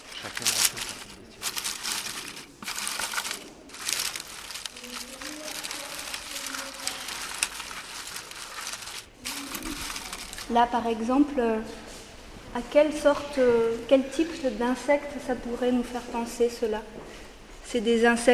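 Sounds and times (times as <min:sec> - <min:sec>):
dry leaves rustling: 0:00.0 - 0:10.6
paper crumpling: 0:00.0 - 0:10.6
speech: 0:00.2 - 0:01.2, 0:10.5 - 0:11.8, 0:12.5 - 0:17.1, 0:17.7 - 0:18.3.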